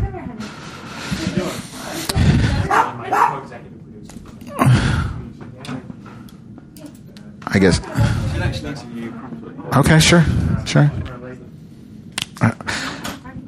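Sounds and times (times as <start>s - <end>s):
indistinct voices: 0.0s - 13.4s
noise: 0.0s - 13.4s
dogs barking: 2.6s - 3.5s
speech: 7.6s - 11.1s.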